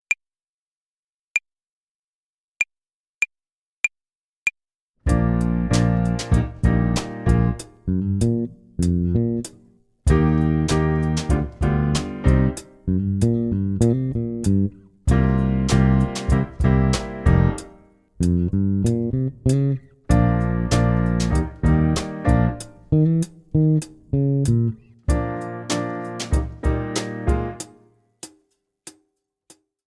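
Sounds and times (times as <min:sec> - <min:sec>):
hi-hat play-along for tempo and rhythm practice: 0:05.1 - 0:28.4.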